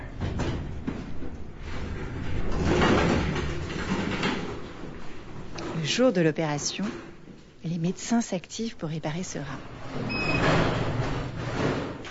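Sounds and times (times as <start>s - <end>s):
elevator doors sliding open at the first floor: 0.0s - 7.2s, 9.6s - 12.0s
speech: 5.9s - 10.7s.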